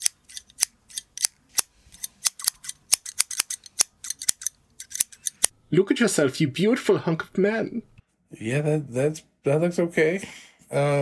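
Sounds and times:
scissors snipping hair on top of a man's head during a haircut: 0.0 - 5.5
speech: 5.7 - 11.0.

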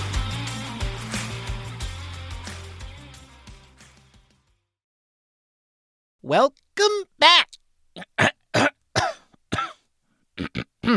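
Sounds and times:
speech: 6.3 - 7.4
throat clearing from something stuck in the throat: 8.0 - 10.9.

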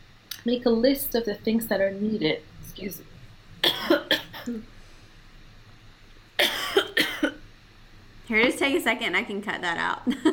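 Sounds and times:
speech: 0.4 - 3.1, 3.8 - 4.7, 8.3 - 10.3
person with a scratchy throat coughing during an interview: 3.6 - 4.6, 6.4 - 7.4.

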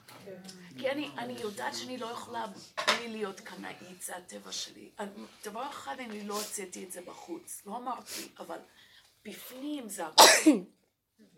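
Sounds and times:
speech: 0.3 - 11.3
woman sneezing: 10.2 - 10.7.

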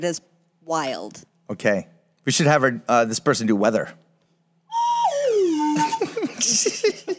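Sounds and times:
speech: 0.0 - 4.0, 5.8 - 7.1
sticky slide whistle being played: 4.7 - 6.6
laughter: 5.3 - 7.1.

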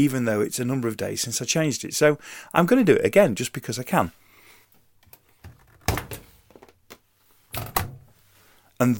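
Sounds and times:
speech: 0.0 - 4.2, 8.8 - 8.9
newly fixed washing machine door opening and shutting: 7.6 - 8.1.

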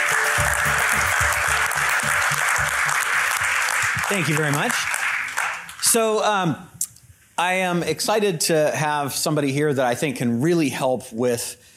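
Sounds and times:
enthusiastic applause from a sizeable crowd: 0.0 - 6.0
speech: 4.1 - 4.8, 5.9 - 6.8, 7.4 - 11.7.

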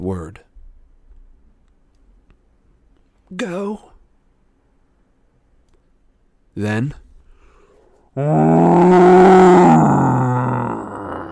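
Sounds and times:
speech: 0.1 - 0.5, 3.3 - 3.9, 6.6 - 7.0, 8.2 - 10.3
monster's angry roar: 8.2 - 11.3.

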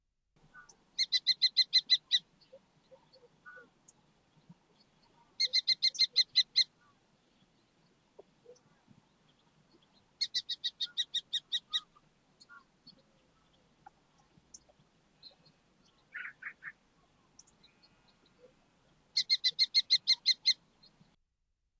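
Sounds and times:
Falco tinnunculus kestrel giving shrill kee-kee-kee calls: 0.5 - 4.0, 5.0 - 7.0, 9.7 - 16.8, 19.1 - 20.6.

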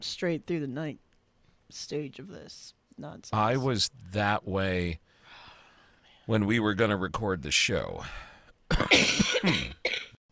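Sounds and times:
speech: 0.0 - 1.1, 1.7 - 5.4, 6.3 - 10.1
two people coughing: 8.7 - 10.2.

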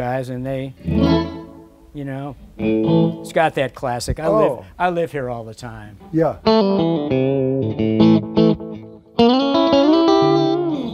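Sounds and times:
speech: 0.0 - 1.4, 2.0 - 8.1
Stratocaster electric guitar played through effects: 2.6 - 3.4, 6.4 - 10.9.

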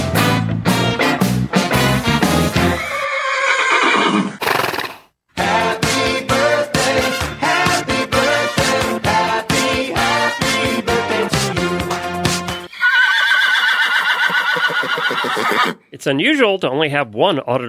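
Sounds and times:
upbeat music with punchy drums: 0.0 - 2.9, 5.4 - 12.7
horse whinnying: 2.5 - 5.1, 12.7 - 15.8
speech: 16.1 - 17.6.

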